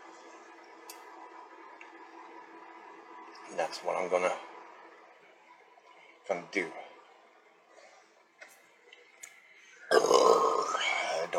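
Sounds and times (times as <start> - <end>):
speech: 3.5 - 4.5, 6.3 - 6.8
loud rough burp: 9.9 - 11.2.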